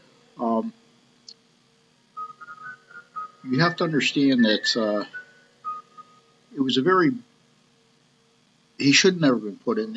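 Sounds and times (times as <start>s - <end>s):
phone going off with a short buzzy electronic tone: 2.2s - 6.3s
quick run of higher beeps: 3.4s - 6.0s
speech: 3.5s - 5.2s, 6.6s - 7.3s, 8.8s - 9.9s.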